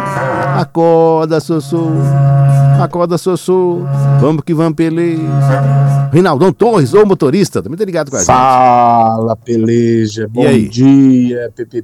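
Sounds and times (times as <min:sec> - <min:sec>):
berrante cattle horn blasts: 0:00.0 - 0:06.6
speech: 0:00.8 - 0:11.8.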